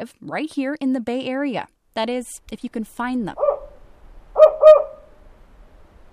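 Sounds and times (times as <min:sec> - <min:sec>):
speech: 0:00.0 - 0:03.5
recorded spotted owl call played back in a forest near dusk: 0:03.4 - 0:03.8, 0:04.4 - 0:05.2.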